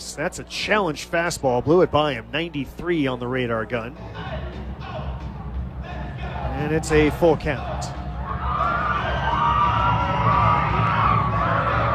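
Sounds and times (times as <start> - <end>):
speech: 0.2 - 4.4, 6.6 - 7.9
large baseball stadium crowd roaring and cheering: 6.2 - 11.9
scattered whoops and shouts from crowd: 8.2 - 11.9.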